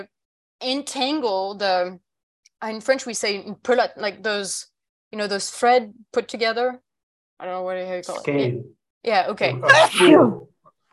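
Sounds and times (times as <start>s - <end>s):
speech: 0.0s - 2.0s, 2.6s - 6.8s, 7.4s - 10.5s
sneeze: 9.6s - 10.4s.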